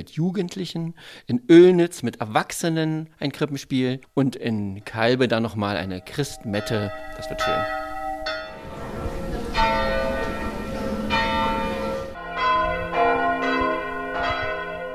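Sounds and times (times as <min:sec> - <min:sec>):
speech: 0:00.0 - 0:07.8
church bells ringing in a peal: 0:04.8 - 0:14.9.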